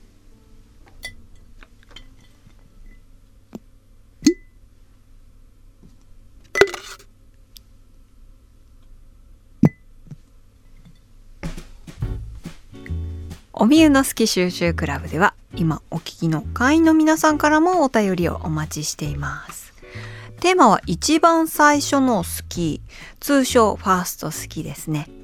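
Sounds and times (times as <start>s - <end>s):
small objects dropping into a glass jar with a bright clink: 6.6s - 7.0s
speech: 13.6s - 19.6s, 20.4s - 25.2s.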